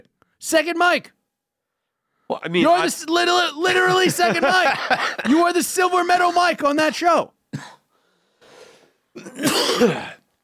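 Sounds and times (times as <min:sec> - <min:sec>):
speech: 0:00.4 - 0:01.2, 0:02.3 - 0:07.7, 0:09.2 - 0:10.2
laughter: 0:03.6 - 0:06.3
person coughing: 0:07.5 - 0:07.9, 0:09.1 - 0:10.3.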